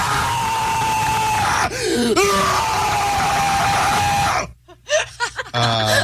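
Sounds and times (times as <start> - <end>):
man letting out a loud raw primal scream to release feelings: 0.0 - 4.6.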